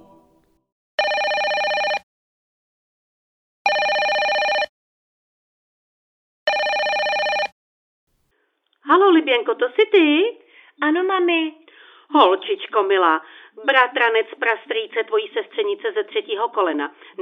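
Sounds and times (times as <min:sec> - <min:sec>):
telephone bell ringing with bright electronic tone: 0:01.0 - 0:02.0, 0:03.7 - 0:04.7, 0:06.5 - 0:07.5
speech: 0:09.1 - 0:17.2.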